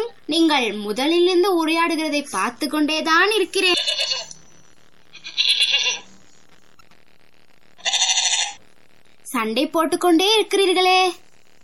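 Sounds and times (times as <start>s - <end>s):
speech: 0.3s - 4.3s, 9.4s - 11.2s
sheep bleating: 3.7s - 4.3s, 5.2s - 6.1s, 7.8s - 8.6s.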